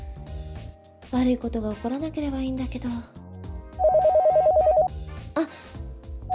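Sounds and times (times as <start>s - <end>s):
light music: 0.0s - 6.3s
speech: 1.1s - 3.2s
telephone ringing with a fast steady electronic trill: 3.8s - 4.9s.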